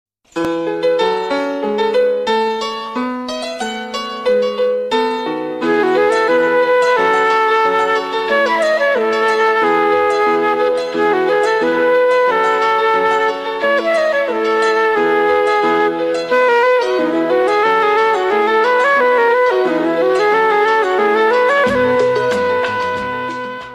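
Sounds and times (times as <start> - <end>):
piano: 0.3 - 23.7
flute: 5.6 - 23.7.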